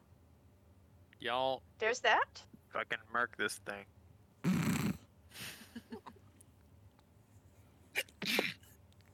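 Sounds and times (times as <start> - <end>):
speech: 1.2 - 4.6
loud sneeze: 8.0 - 8.7.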